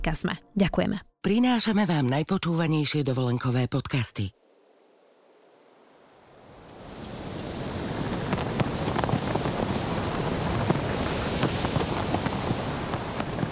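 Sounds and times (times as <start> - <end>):
speech: 0.0 - 4.4
seaside wind rushing: 4.4 - 13.5
ocean surf: 4.5 - 13.5
wind buffeting the microphone: 6.3 - 13.5.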